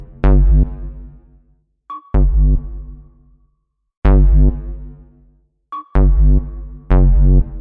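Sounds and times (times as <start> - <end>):
sonar-like synth bassline: 0.0 - 1.3, 2.0 - 3.3, 4.1 - 5.1, 5.8 - 7.5.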